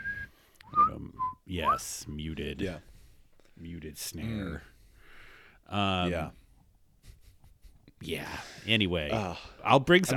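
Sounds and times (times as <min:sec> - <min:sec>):
person whistling a tune: 0:00.0 - 0:01.8
speech: 0:01.5 - 0:02.9, 0:03.6 - 0:04.7, 0:05.7 - 0:06.4, 0:08.0 - 0:10.1.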